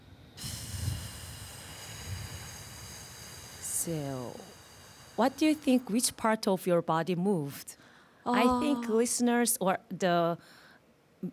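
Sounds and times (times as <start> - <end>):
person exhaling one big breath during a breathing exercise: 0.4 - 5.6
speech: 3.9 - 4.5, 5.2 - 10.6.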